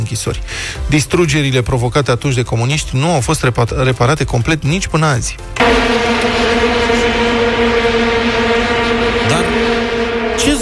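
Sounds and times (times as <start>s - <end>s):
speech: 0.0s - 6.4s
many vuvuzela horns blowing at once: 5.6s - 10.5s.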